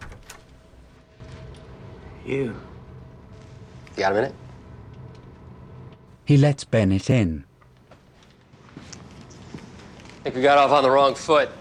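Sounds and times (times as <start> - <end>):
door swinging open with a low rumble: 0.0 - 0.6
speech: 2.3 - 2.7, 4.0 - 4.4, 6.3 - 7.5, 10.3 - 11.6.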